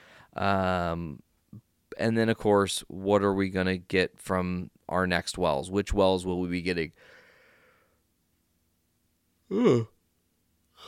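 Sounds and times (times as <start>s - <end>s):
speech: 0.4s - 7.2s, 9.5s - 9.9s
person yawning: 9.5s - 10.0s.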